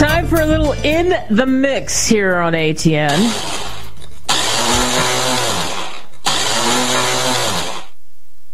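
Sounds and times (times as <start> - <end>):
speech: 0.2 - 3.7
loud straining kitchen blender motor running: 3.1 - 7.9.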